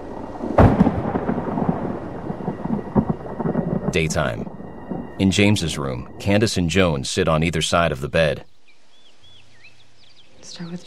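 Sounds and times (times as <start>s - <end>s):
thunder from lightning outside: 0.0s - 6.6s
speech: 3.9s - 4.5s, 5.2s - 8.5s, 10.5s - 10.8s.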